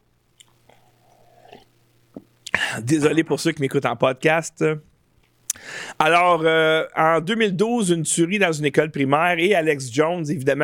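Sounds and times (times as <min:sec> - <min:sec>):
faint wet mouth clicks while sipping water: 0:00.4 - 0:02.6
soft swallow of water: 0:00.7 - 0:01.7
speech: 0:02.8 - 0:04.9, 0:06.0 - 0:10.6.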